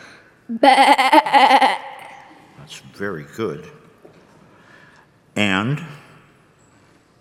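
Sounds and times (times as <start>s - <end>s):
speech: 0.5s - 1.9s, 2.7s - 3.8s, 5.4s - 6.0s
person imitating a sheep bleating: 0.5s - 2.1s.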